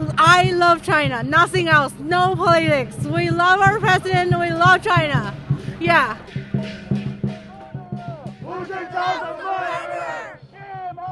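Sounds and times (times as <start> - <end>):
speech: 0.4 - 6.8
protest crowd of Tibetan descent shouting in loud rhythmic unison: 7.5 - 11.1.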